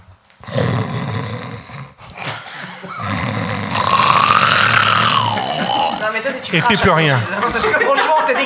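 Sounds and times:
person vocally imitating snoring of a sleep apnea patient: 0:00.4 - 0:02.3, 0:03.0 - 0:06.2
laughter: 0:05.2 - 0:08.4
speech: 0:06.1 - 0:08.4.

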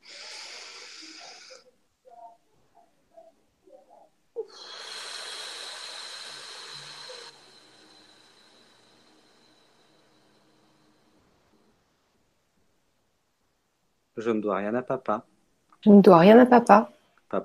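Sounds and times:
person breathing during a guided affirmation exercise: 0:00.0 - 0:02.3, 0:04.4 - 0:11.8
speech: 0:14.2 - 0:17.4.

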